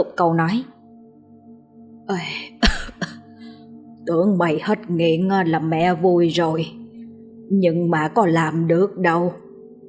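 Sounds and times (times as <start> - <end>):
speech: 0.0 - 0.7, 2.1 - 2.7, 4.0 - 6.8, 7.5 - 9.4
old woman coughing while covering her mouth: 2.5 - 3.3.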